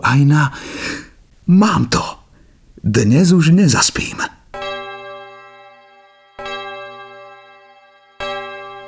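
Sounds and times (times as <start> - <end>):
speech: 0.1 - 2.2, 2.8 - 4.4
clock bell striking with rich metallic tolls: 4.6 - 8.8.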